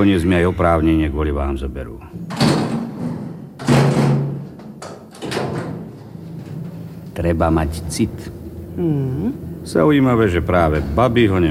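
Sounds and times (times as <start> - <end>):
speech: 0.0 - 2.7, 7.2 - 11.4
door slamming shut with a loud sharp bang: 2.3 - 5.9.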